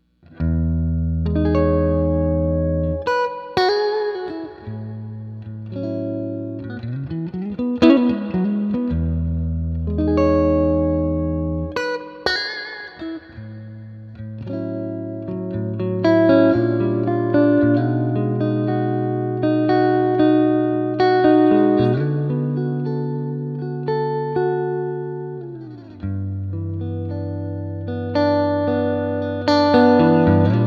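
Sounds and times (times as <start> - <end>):
1955 Epic electric guitar on neck and middle pickups: 0.0 - 30.6.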